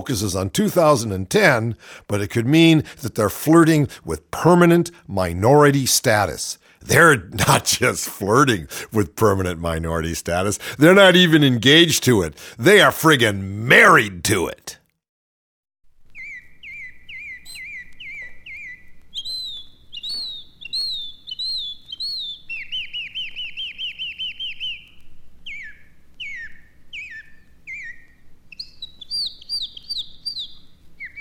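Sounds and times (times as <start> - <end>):
speech: 0.0 - 14.8
birds chirping and tweeting: 16.1 - 31.1.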